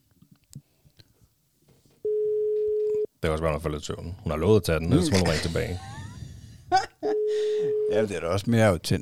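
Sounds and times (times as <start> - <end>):
phone ringback tone while placing a call: 2.0 - 3.1, 7.1 - 8.1
speech: 3.2 - 6.0, 7.9 - 8.9
laughter: 5.0 - 7.2.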